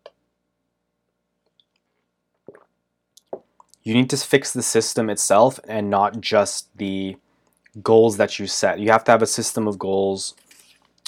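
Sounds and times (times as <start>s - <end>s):
soft mouth clicks from drinking water: 1.4s - 3.8s
person gulping water: 2.4s - 3.8s
wet mouth sounds from drinking water: 2.4s - 3.8s
speech: 3.8s - 10.4s.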